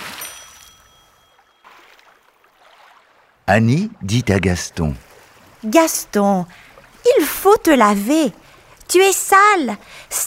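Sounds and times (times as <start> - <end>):
person falling backward into a river splash: 0.0 - 1.0, 1.6 - 3.2
churning bubbling river water: 0.0 - 10.0
speech: 3.5 - 10.2.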